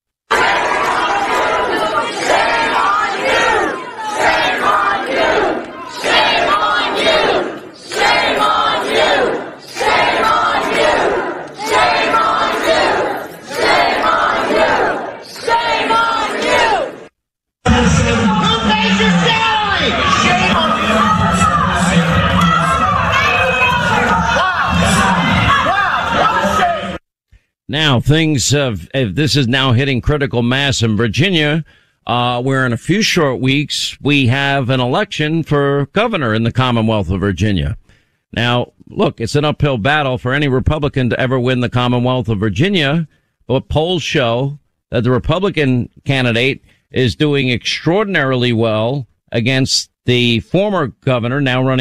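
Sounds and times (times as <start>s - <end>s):
many angry parents shouting at a meeting: 0.3s - 17.1s, 17.7s - 27.0s
raised individual yells: 17.8s - 27.0s
speech: 28.1s - 51.8s.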